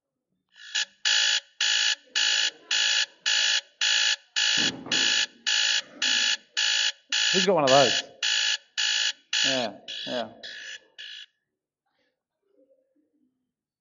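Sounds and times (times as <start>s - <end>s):
alarm clock ringing in harsh beeping bursts: 0.6s - 11.3s
low thump: 4.6s - 5.1s
speech: 7.3s - 8.1s, 9.4s - 10.6s.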